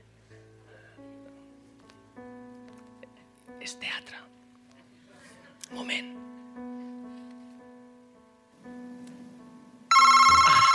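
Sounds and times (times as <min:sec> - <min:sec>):
speech: 0:03.6 - 0:04.3, 0:05.7 - 0:06.2
mobile phone ringtone: 0:09.9 - 0:10.7.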